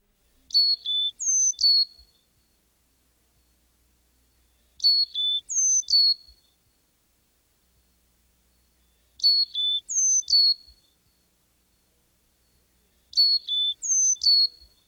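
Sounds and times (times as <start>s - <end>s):
Carolina chickadee singing whistled four-note song: 0.5s - 2.3s, 4.8s - 6.6s, 8.8s - 11.2s, 13.1s - 14.8s.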